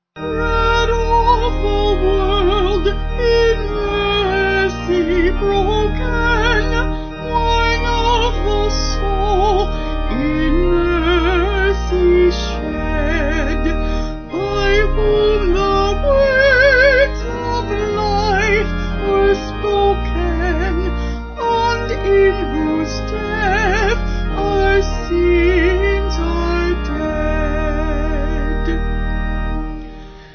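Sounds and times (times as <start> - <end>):
organ: 0.0 - 30.3
person singing a Eucharistic hymn: 0.2 - 30.3.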